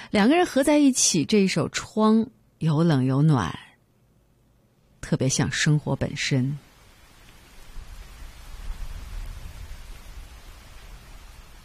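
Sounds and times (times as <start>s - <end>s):
speech: 0.1s - 3.6s, 5.0s - 6.7s
steady rain falling: 6.2s - 11.6s
thunder rumble: 7.5s - 11.6s.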